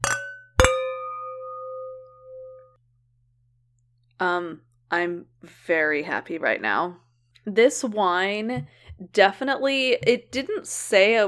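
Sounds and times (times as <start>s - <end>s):
wine glasses clinking in a toast: 0.0s - 2.5s
speech: 4.2s - 11.2s.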